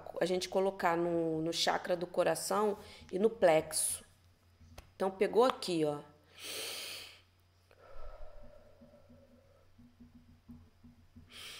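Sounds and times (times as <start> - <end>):
speech: 0.2 - 4.0, 5.0 - 6.7
slow deep breath in through the nose as a breathing exercise: 6.3 - 9.6, 11.3 - 11.5
quiet low hums: 7.8 - 9.7.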